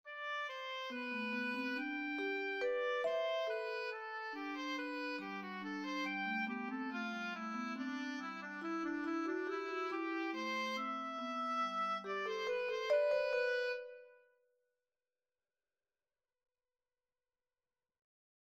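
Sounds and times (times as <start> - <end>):
free counterpoint music: 0.1 - 14.2.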